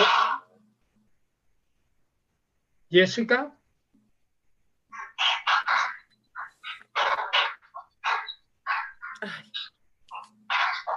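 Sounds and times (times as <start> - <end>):
dog yapping picked up by a call participant's microphone: 0.0 - 0.5, 4.9 - 6.0, 6.6 - 9.2, 10.1 - 10.9
speech: 2.9 - 3.6, 9.2 - 9.5.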